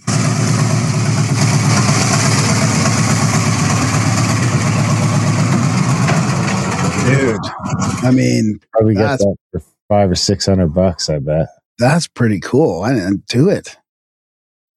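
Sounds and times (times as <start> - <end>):
1968 car engine with 111,000 miles idling roughly, needing a carburettor clean: 0.0 - 7.0
speech: 7.1 - 13.8.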